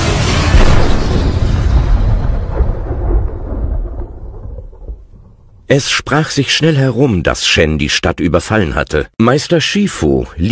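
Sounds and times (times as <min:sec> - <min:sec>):
huge cannon firing: 0:00.2 - 0:05.6
speech: 0:05.7 - 0:10.5.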